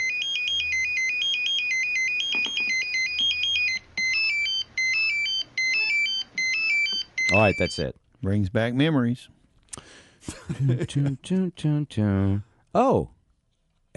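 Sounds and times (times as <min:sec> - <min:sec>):
electronic pager beeping: 0:00.0 - 0:07.9
speech: 0:07.3 - 0:13.2.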